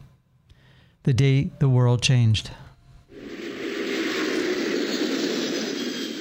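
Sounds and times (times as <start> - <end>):
speech: 1.0 - 2.6
jet airliner roaring during takeoff: 3.1 - 6.1.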